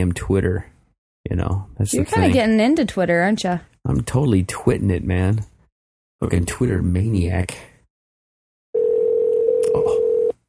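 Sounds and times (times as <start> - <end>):
speech: 0.0 - 0.7, 1.3 - 5.5, 6.2 - 7.7
steady telephone line tone: 8.8 - 10.4.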